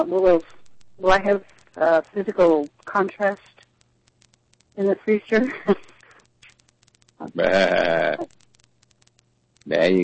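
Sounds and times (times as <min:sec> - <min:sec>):
speech: 0:00.0 - 0:03.5, 0:04.8 - 0:05.9, 0:07.2 - 0:08.4, 0:09.7 - 0:10.0
faint clicks: 0:00.0 - 0:10.0
person imitating a sheep bleat: 0:07.3 - 0:08.3.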